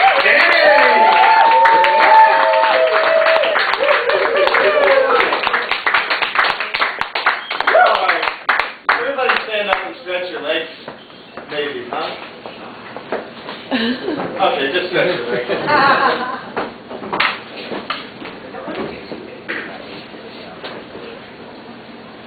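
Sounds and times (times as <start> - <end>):
whoops and whistled cheers from the crowd: 0.0 - 5.4, 7.4 - 8.1
crowd applause: 0.0 - 10.0
laughter: 13.7 - 14.4, 15.0 - 16.6.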